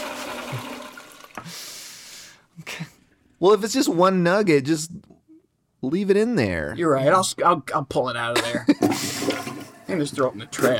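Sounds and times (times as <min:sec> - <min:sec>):
toilet flushing and refilling: 0:00.0 - 0:01.5, 0:08.8 - 0:10.7
speech: 0:03.4 - 0:05.0, 0:05.8 - 0:10.7.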